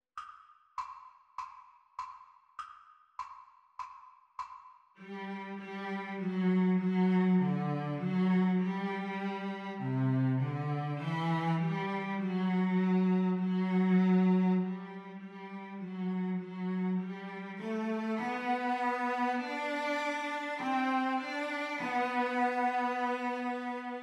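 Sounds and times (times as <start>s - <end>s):
cello duet playalong at exam speed: 5.0s - 24.0s.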